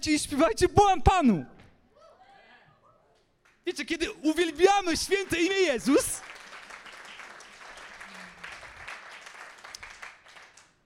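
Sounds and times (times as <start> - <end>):
speech: 0.0 - 1.6, 3.6 - 6.3
audience applause of many hands clapping: 4.8 - 10.8.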